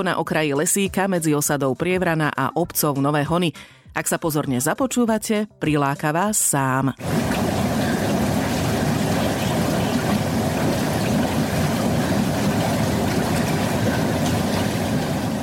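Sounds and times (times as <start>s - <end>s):
speech: 0.0s - 7.7s
murky sulphur spring water bubbling and gurgling at the edge of a small wood: 7.0s - 15.4s.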